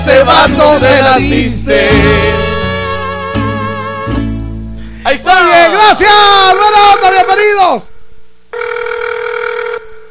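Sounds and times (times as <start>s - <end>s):
speech: 0.2s - 2.6s, 5.1s - 8.0s
telephone ringing with a bright buzzy electronic tone: 8.5s - 10.0s.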